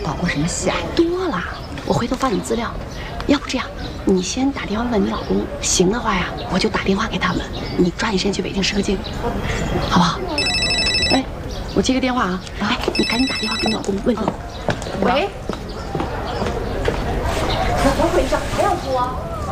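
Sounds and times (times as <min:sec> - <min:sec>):
people on a film shoot talking: 0:00.0 - 0:19.5
telephone ringing with bell-like bursts: 0:10.4 - 0:11.3, 0:12.9 - 0:13.9.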